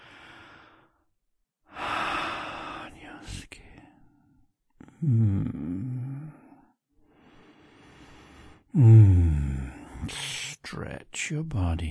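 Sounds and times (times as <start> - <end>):
person breathing close to the microphone: 0.0 - 1.0, 1.7 - 4.1, 6.3 - 10.1
speech: 5.0 - 5.9, 11.2 - 11.8.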